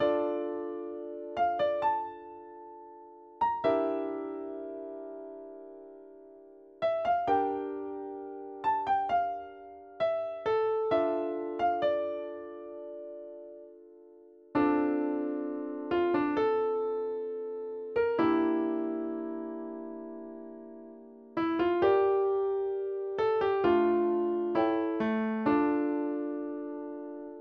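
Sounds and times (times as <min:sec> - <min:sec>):
instrumental music: 0:00.0 - 0:27.3.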